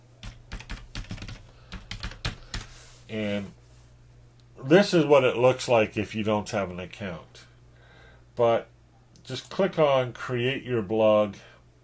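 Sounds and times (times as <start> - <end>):
typing on a computer keyboard: 0.2 - 2.7
speech: 3.1 - 3.6, 4.6 - 7.5, 8.4 - 8.7, 9.3 - 11.5.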